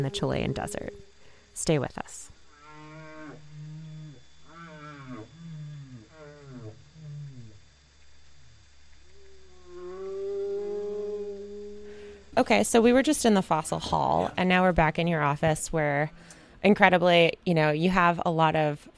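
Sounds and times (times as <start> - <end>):
speech: 0.0 - 2.3, 12.4 - 18.9
whale song: 0.0 - 12.4.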